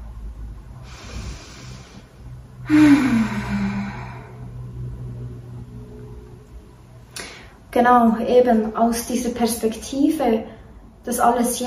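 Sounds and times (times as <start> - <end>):
quiet low rumble: 0.0 - 7.7
slow deep breaths with a low voiced hum: 0.7 - 5.0
speech: 2.7 - 2.9, 7.8 - 11.6.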